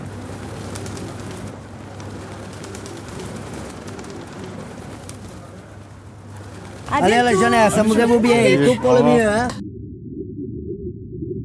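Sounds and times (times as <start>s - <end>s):
pigeons or doves cooing: 0.0s - 9.2s
busy outdoor noise: 0.0s - 9.6s
laughter: 6.4s - 9.6s
speech: 7.0s - 9.6s
constant low hum: 9.2s - 11.4s.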